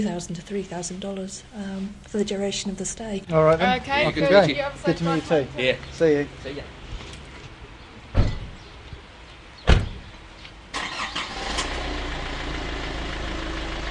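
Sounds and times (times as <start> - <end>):
speech: 0.0 - 6.8
heavy thuds: 8.1 - 8.6, 9.7 - 10.1
car engine starting and running: 10.7 - 13.9.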